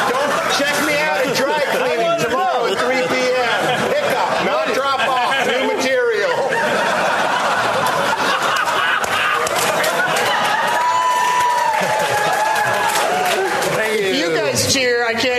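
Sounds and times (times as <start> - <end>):
laughter: 0.0 - 14.5
large crowd cheering loudly: 0.0 - 14.6.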